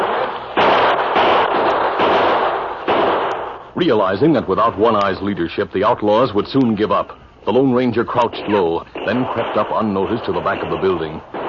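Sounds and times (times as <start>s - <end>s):
gunfire bursts in a shootout with outlaws holed up in a building: 0.0s - 3.7s, 8.1s - 11.4s
speech: 3.8s - 11.4s.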